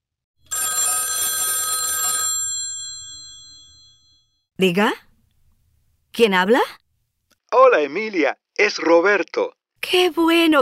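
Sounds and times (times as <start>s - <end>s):
telephone bell ringing: 0.4s - 4.5s
speech: 4.6s - 5.0s, 6.2s - 6.8s, 7.5s - 10.6s.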